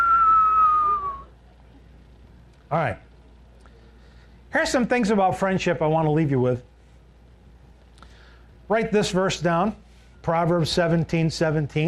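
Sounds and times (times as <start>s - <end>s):
sustained whistling tone: 0.0s - 1.4s
speech: 2.7s - 3.1s, 4.5s - 6.7s, 8.7s - 11.8s.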